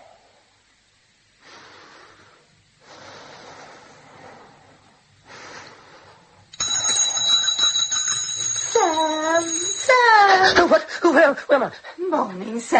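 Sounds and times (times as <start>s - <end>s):
loud shrill bell ringing: 6.6s - 10.7s
speech: 11.2s - 12.7s.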